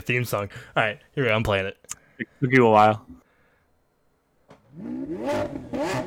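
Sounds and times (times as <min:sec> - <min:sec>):
speech: 0:00.0 - 0:03.2, 0:04.8 - 0:06.0
car engine revving: 0:04.6 - 0:06.0.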